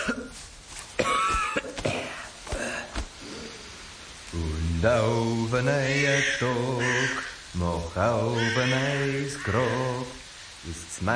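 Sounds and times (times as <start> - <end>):
harsh strained coughing: 0.0 - 0.4, 1.0 - 3.0
speech: 4.8 - 11.1.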